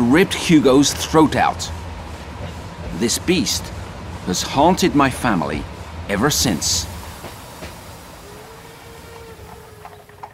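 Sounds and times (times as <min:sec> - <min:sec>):
train rumbling along the rails: 0:00.0 - 0:10.3
speech: 0:00.1 - 0:01.8, 0:03.0 - 0:06.9
faint thin squeal: 0:08.2 - 0:10.3.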